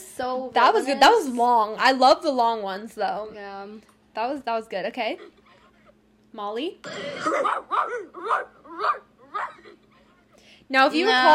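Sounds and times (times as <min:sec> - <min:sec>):
speech: 0:00.2 - 0:05.4, 0:06.3 - 0:09.5, 0:10.7 - 0:11.3
person imitating a dog barking with yappy barks: 0:07.4 - 0:09.6.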